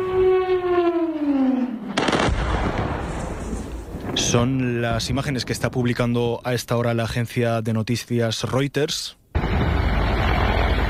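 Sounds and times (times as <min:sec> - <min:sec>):
wailing siren winding down in pitch: 0:00.0 - 0:02.0, 0:09.4 - 0:10.8
sharp booming explosions in a city: 0:00.0 - 0:06.6, 0:09.4 - 0:10.8
rumbling wash of outdoor noise: 0:00.0 - 0:07.5, 0:09.2 - 0:10.8
speech: 0:04.3 - 0:09.2.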